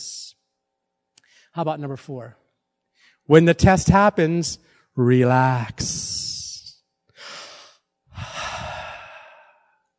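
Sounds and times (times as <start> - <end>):
speech: 1.5 - 2.4, 3.3 - 6.1
person taking deep breaths while leading a group to relax before a test: 7.2 - 9.8.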